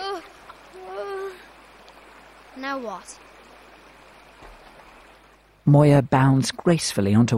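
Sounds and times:
river water flowing: 0:00.0 - 0:05.6
speech: 0:02.6 - 0:03.3, 0:05.6 - 0:07.3.

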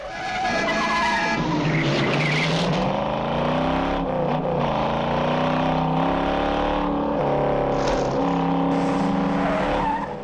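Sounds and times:
car tyres squealing and skidding as cars swerve on a road: 0:00.0 - 0:03.0, 0:07.7 - 0:10.2
car engine roar: 0:01.3 - 0:10.2.

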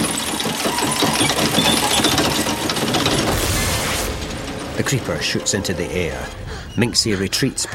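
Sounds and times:
wire reel spinning and unwinding: 0:00.0 - 0:06.2
speech: 0:04.8 - 0:07.7.

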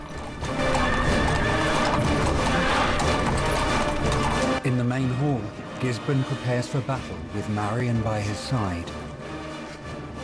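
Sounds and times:
horses galloping at full pace: 0:00.0 - 0:08.8
speech: 0:05.0 - 0:09.0.

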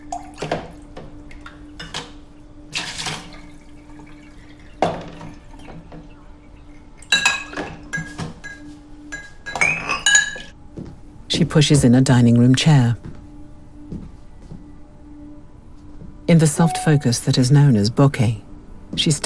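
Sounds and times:
dishes clattering in a bowl at the sink: 0:07.0 - 0:10.5
glass and cutlery clinking while washing up dishes in a bowl at the sink: 0:07.0 - 0:10.5
speech: 0:11.6 - 0:13.0, 0:16.4 - 0:19.2.

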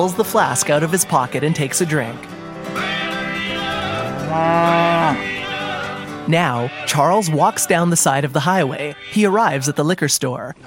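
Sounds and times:
speech: 0:00.0 - 0:03.0, 0:04.3 - 0:05.3, 0:06.3 - 0:10.6
cow mooing: 0:03.7 - 0:05.3.

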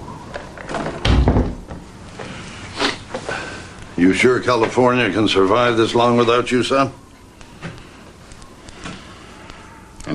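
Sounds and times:
door pushed shut with a solid thud: 0:00.9 - 0:01.8
speech: 0:04.0 - 0:07.0.

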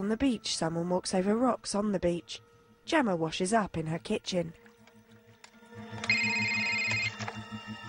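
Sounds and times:
speech: 0:00.0 - 0:04.6
telephone ringing with electronic trill: 0:05.8 - 0:07.8.

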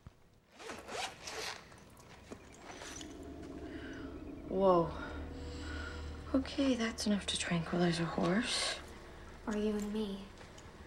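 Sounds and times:
zipper on a zip-up pouch holding a medical kit being opened: 0:00.5 - 0:01.7
speech: 0:04.5 - 0:05.1, 0:06.3 - 0:08.8, 0:09.5 - 0:10.3.

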